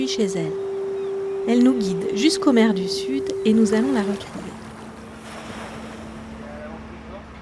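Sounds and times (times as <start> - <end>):
speech: 0.0 - 0.7, 1.5 - 4.6
constant low hum: 0.0 - 7.4
wind around moored boats at a harbour pontoon: 0.0 - 7.4
water washing around moored boats at a harbour pontoon in Lorient France: 2.2 - 7.4.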